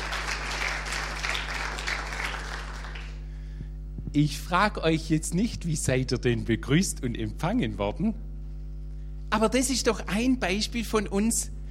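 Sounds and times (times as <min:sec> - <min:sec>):
audience applauding: 0:00.0 - 0:03.3
low electrical hum: 0:00.0 - 0:11.6
speech: 0:04.2 - 0:08.3, 0:09.3 - 0:11.6.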